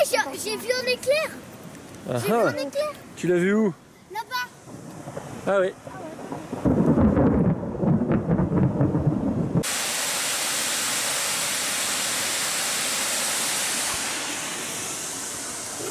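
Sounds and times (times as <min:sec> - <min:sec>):
speech: 0:00.2 - 0:04.5, 0:05.4 - 0:06.0
deep loud thunder rumbling: 0:04.6 - 0:09.7
heavy rain pouring during a storm: 0:04.6 - 0:15.8.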